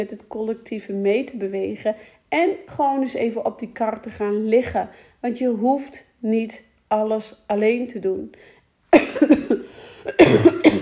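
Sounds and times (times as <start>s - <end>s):
speech: 0.0s - 10.8s
person coughing in a harsh loud fit: 9.0s - 10.8s.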